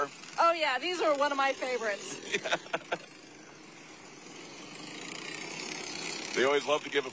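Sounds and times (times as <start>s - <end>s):
speech: 0.0s - 3.1s, 6.4s - 7.1s
old trucks' engines idling in a parade: 0.0s - 7.1s
laughter: 2.2s - 3.2s.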